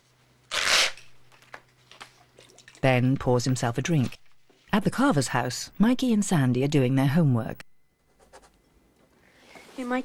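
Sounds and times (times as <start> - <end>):
check torn out of a checkbook: 0.5 - 1.1
speech: 2.8 - 4.2, 4.8 - 7.7, 9.8 - 10.0.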